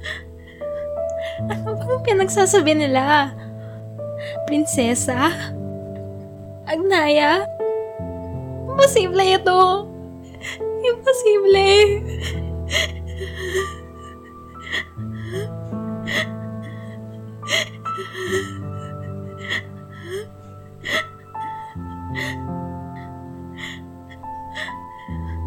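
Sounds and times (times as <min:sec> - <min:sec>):
girl sobbing and whimpering as she cries herself to sleep: 0:00.0 - 0:04.5, 0:10.2 - 0:25.4
soft music with sustained tones: 0:00.0 - 0:25.4
speech: 0:01.4 - 0:03.4, 0:04.5 - 0:05.6, 0:06.7 - 0:07.5, 0:08.8 - 0:12.9.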